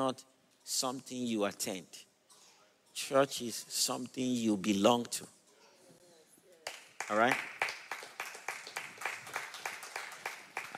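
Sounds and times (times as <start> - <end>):
speech: 0.0 - 2.1, 3.0 - 5.4, 7.1 - 7.5
audience clapping rhythmically: 6.6 - 10.7.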